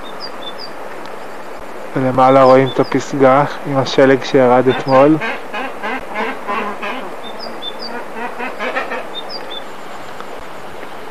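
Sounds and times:
steady hiss: 0.0 - 11.0
speech: 2.0 - 5.6
duck standing on one leg quacking: 4.6 - 9.3.

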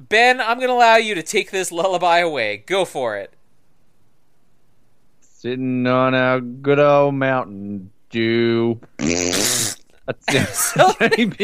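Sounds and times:
speech: 0.0 - 3.4, 5.4 - 11.4
voice imitating farting with wet buzzy raspberry noises: 8.9 - 10.0
laughter: 10.3 - 11.4.

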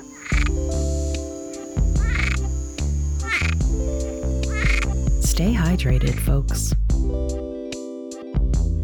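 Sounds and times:
Cuban tree frog raspy croaking call: 0.0 - 6.7
speech: 5.4 - 7.2.

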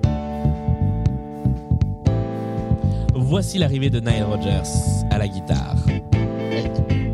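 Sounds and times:
repetitive dance music beat at 120 BPM: 0.0 - 4.2, 5.9 - 7.1
speech: 3.3 - 5.9.

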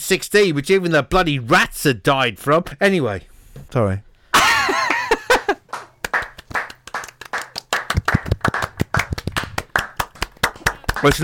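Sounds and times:
speech: 0.1 - 4.1, 11.0 - 11.2
laughter: 4.4 - 5.7
hand claps: 5.6 - 11.2.

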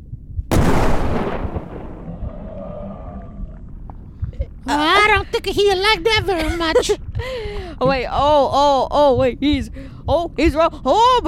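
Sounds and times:
cannon blast: 0.5 - 2.9
speech: 4.7 - 11.2.

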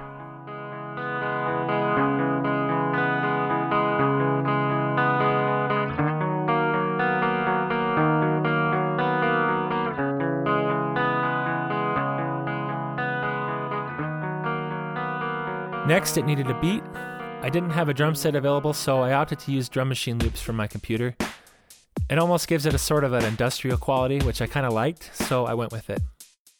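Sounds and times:
doubled slightly distorted electric guitar riff: 0.0 - 20.7
speech: 15.9 - 21.2, 22.1 - 26.1.

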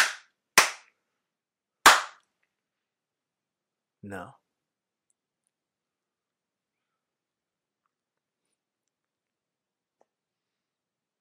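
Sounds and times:
sharp loud hand slaps with short echo: 0.0 - 1.0, 1.8 - 2.2
speech: 4.0 - 4.4.

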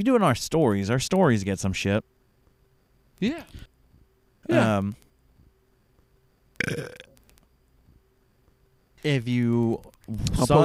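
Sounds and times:
speech: 0.0 - 2.2, 3.2 - 3.7, 4.5 - 5.0, 6.6 - 7.0, 9.0 - 10.6
loud drawn-out throaty burp: 6.6 - 7.2.

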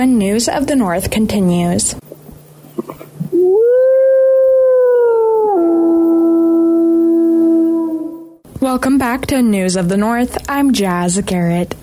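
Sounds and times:
speech: 0.0 - 2.1, 8.7 - 11.8
wolf howling: 3.4 - 8.4.

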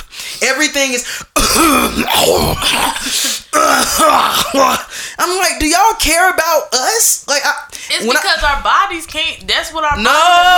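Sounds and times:
speech: 0.4 - 10.5
person loudly imitating harsh violent coughs: 1.4 - 4.9
imitated throat-clearing hacks: 1.4 - 5.0.

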